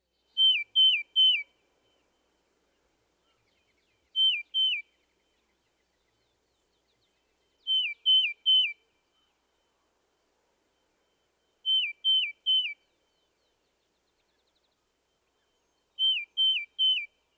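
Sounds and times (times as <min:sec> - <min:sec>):
tufted titmouse singing downslurred whistles: 0:00.2 - 0:02.2, 0:03.3 - 0:09.4, 0:11.1 - 0:13.6, 0:15.3 - 0:17.2.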